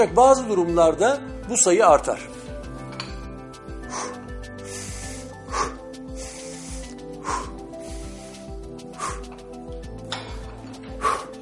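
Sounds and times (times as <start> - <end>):
speech: 0.0 - 2.5
rapid heavy breathing with gasps: 3.6 - 11.4.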